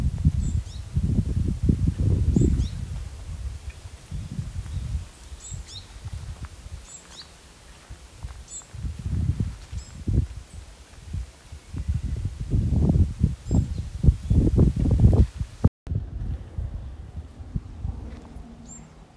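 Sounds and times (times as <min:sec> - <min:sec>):
birds chirping with short high thin calls: 0:00.0 - 0:01.0, 0:01.9 - 0:15.4, 0:18.3 - 0:19.1
heavy low wind gusts buffeting the microphone: 0:00.0 - 0:19.1.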